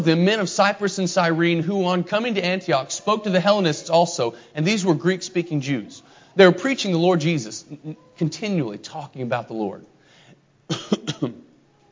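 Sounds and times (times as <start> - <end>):
speech: 0.0 - 9.9, 10.7 - 11.4
person coughing after choking while talking: 10.7 - 11.5.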